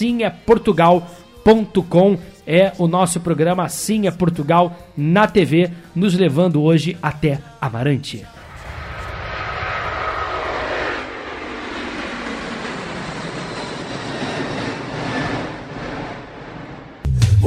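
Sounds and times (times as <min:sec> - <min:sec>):
speech: 0:00.0 - 0:08.4
airplane engine roar passing overhead: 0:00.1 - 0:01.5, 0:08.3 - 0:17.1.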